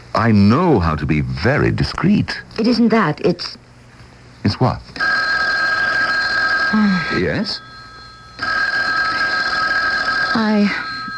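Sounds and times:
speech: 0:00.2 - 0:03.6, 0:04.4 - 0:05.0, 0:06.7 - 0:07.7, 0:10.4 - 0:10.9
telephone bell ringing loudly: 0:05.0 - 0:11.1.

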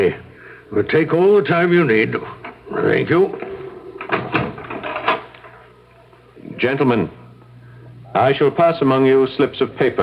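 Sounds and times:
speech: 0:00.0 - 0:03.5, 0:06.6 - 0:07.2, 0:08.1 - 0:10.0
door opening: 0:02.4 - 0:05.7.

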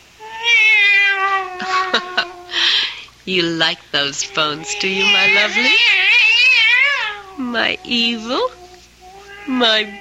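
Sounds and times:
cat meowing: 0:00.2 - 0:02.5, 0:04.3 - 0:10.0
speech: 0:03.3 - 0:06.0, 0:07.4 - 0:08.6, 0:09.5 - 0:10.0.

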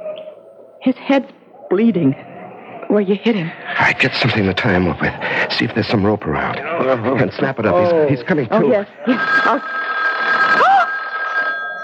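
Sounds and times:
speech: 0:00.8 - 0:02.3, 0:02.9 - 0:09.8
telephone ringing: 0:09.0 - 0:11.8.

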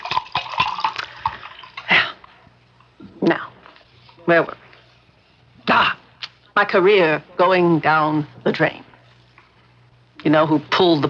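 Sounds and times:
drink being poured to refill a little glass: 0:00.0 - 0:01.9
speech: 0:04.3 - 0:04.6, 0:06.6 - 0:08.8, 0:10.2 - 0:11.0.

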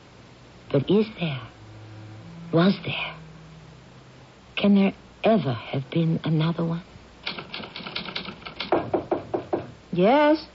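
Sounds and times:
speech: 0:00.7 - 0:01.6, 0:02.5 - 0:03.2, 0:04.6 - 0:06.9, 0:10.0 - 0:10.5
typewriter typing: 0:07.2 - 0:08.9.

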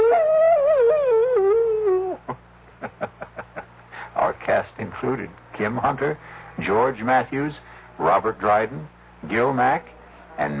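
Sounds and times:
wolf howling: 0:00.0 - 0:02.2
speech: 0:05.0 - 0:10.5.

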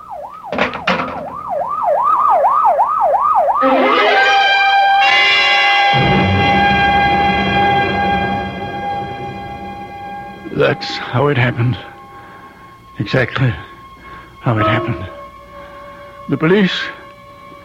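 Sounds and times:
ambulance siren wailing: 0:00.0 - 0:17.6
long blaring horn blast: 0:03.6 - 0:17.6
speech: 0:10.7 - 0:12.0, 0:13.0 - 0:13.7, 0:14.4 - 0:15.2, 0:16.3 - 0:17.0.

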